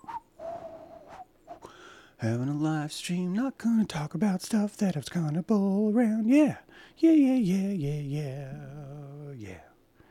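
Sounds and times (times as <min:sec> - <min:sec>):
person whistling: 0:00.0 - 0:01.7
speech: 0:02.2 - 0:09.7.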